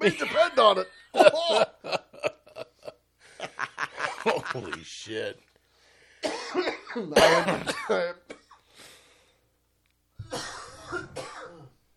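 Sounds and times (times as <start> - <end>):
speech: 0.0 - 1.7
laughter: 0.0 - 5.0
faint breath: 5.6 - 6.2, 8.6 - 9.5
harsh coughing: 6.2 - 8.6, 10.2 - 11.8.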